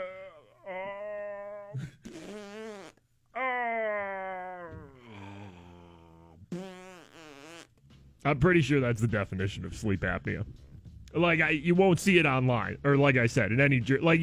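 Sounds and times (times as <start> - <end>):
voice imitating farts: 1.8 - 3.0, 4.6 - 7.8
speech: 8.2 - 14.1.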